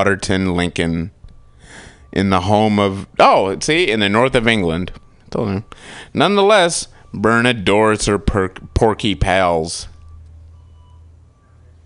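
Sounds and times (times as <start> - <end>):
speech: 0.0 - 1.2, 2.1 - 9.9
faint fire truck reversing beeps: 0.0 - 11.8
large fire truck engine idling: 3.0 - 10.2.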